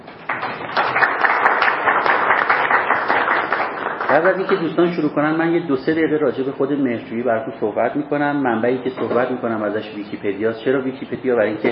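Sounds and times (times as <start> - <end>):
audience at a meeting applauding: 0.2 - 4.7
speech: 4.1 - 11.6.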